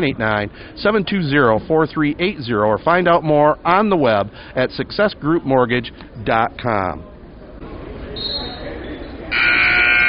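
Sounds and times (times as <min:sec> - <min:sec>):
speech: 0:00.0 - 0:07.1
loud harsh gym buzzer during basketball play: 0:09.3 - 0:10.0.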